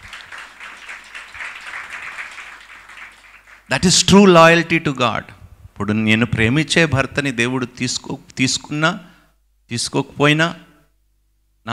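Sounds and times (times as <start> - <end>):
audience at a talk applauding: 0.0 - 3.7
speech: 3.7 - 9.1, 9.7 - 10.6.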